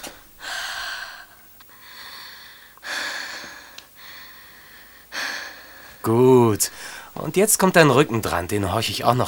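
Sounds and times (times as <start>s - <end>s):
deep breathing in and out through an open mouth: 0.0s - 6.0s, 6.7s - 7.2s
speech: 6.0s - 9.2s.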